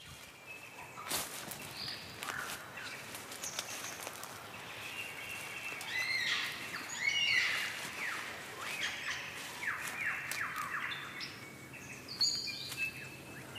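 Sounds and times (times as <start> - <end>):
superb lyrebird of southern Australia singing: 0.0 - 13.5
rustling: 1.0 - 10.8.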